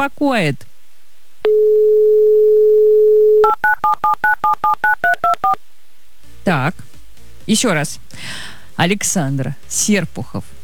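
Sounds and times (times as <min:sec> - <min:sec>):
speech: 0:00.0 - 0:00.7, 0:01.5 - 0:02.7, 0:03.4 - 0:05.7, 0:06.4 - 0:06.9, 0:07.5 - 0:10.5
telephone dial tone: 0:01.4 - 0:04.0
touch-tone dialing beeps: 0:01.5 - 0:05.6.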